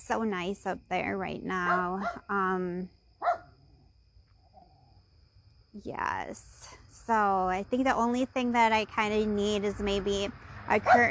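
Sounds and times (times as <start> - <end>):
speech: 0.0 - 3.0, 5.8 - 11.0
dog barking: 1.7 - 2.2, 3.2 - 3.5, 10.8 - 11.0.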